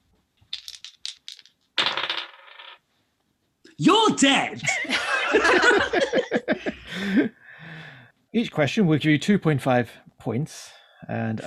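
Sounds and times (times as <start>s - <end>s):
dice rattling in a cup: 0.5s - 2.8s
speech: 3.8s - 6.4s, 8.3s - 11.4s
laughter: 4.6s - 7.3s.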